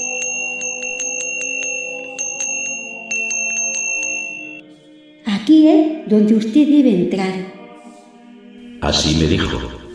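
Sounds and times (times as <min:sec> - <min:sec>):
hand bell rung vigorously at door: 0:00.0 - 0:04.6
speech: 0:05.5 - 0:07.6, 0:08.8 - 0:09.8.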